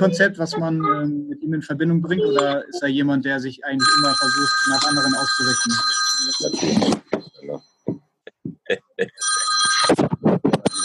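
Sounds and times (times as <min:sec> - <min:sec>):
speech: 0:00.0 - 0:07.1
telephone ringing: 0:03.8 - 0:07.5, 0:09.2 - 0:10.0, 0:10.6 - 0:10.8.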